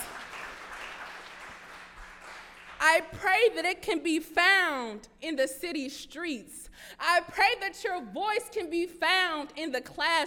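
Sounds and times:
audience applauding in a large room: 0:00.0 - 0:02.8
speech: 0:02.8 - 0:10.2.

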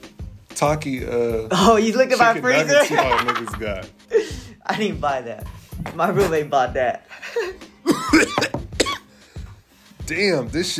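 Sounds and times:
speech: 0:00.6 - 0:04.0, 0:04.6 - 0:08.6, 0:10.1 - 0:10.7
laughter: 0:02.6 - 0:03.8
harsh coughing after a draw on a nicotine vape: 0:07.3 - 0:09.1.

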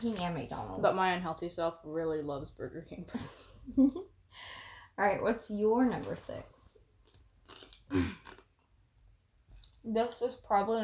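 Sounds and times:
speech: 0:00.0 - 0:06.5, 0:07.9 - 0:08.2, 0:09.8 - 0:10.8
soft chewing crackles: 0:07.0 - 0:08.6
snack crunching with crisp bites: 0:07.0 - 0:08.7.

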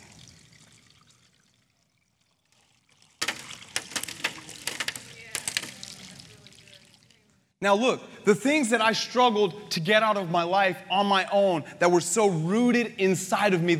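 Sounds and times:
water pouring into a vessel: 0:00.0 - 0:07.5
speech: 0:07.6 - 0:13.7.

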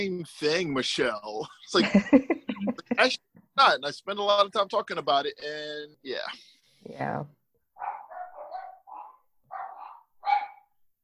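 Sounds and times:
speech: 0:00.0 - 0:02.4, 0:03.0 - 0:07.4
laughter: 0:00.9 - 0:03.2
pet dogs barking and yipping: 0:07.8 - 0:10.7.

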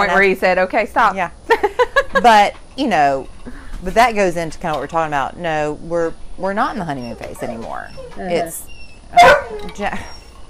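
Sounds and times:
speech: 0:00.0 - 0:10.2
dog barking: 0:09.2 - 0:09.6.

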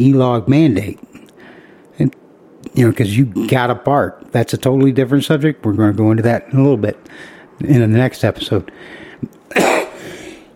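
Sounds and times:
speech: 0:00.0 - 0:01.1, 0:02.0 - 0:02.2, 0:02.8 - 0:09.7
faint throat-clearing rasp: 0:09.5 - 0:10.2
person coughing into a microphone: 0:09.5 - 0:10.4.

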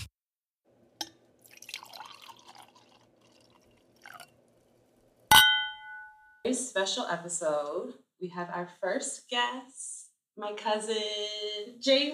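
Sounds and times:
faint liquid sounds: 0:01.4 - 0:05.2
glasses clinking in a toast: 0:05.3 - 0:06.4
speech: 0:06.5 - 0:12.1.

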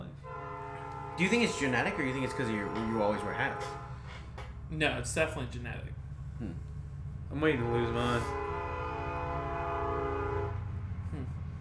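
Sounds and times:
rumble of a passing train on rails: 0:00.0 - 0:11.6
train horn blaring in a long steady chord: 0:00.2 - 0:04.4, 0:07.4 - 0:11.0
speech: 0:01.2 - 0:03.8, 0:04.7 - 0:06.7, 0:07.3 - 0:08.6.

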